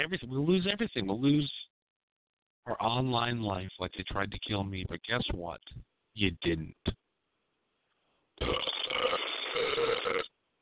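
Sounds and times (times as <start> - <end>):
speech: 0.0 - 1.6, 2.6 - 7.0, 8.4 - 8.7
loud burp: 8.4 - 10.4.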